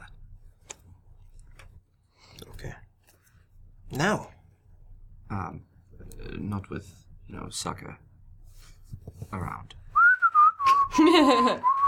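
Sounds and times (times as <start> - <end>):
speech: 4.0 - 4.3, 6.7 - 8.1, 9.3 - 9.8, 11.0 - 11.8
person whistling a short simple tune: 10.0 - 11.8.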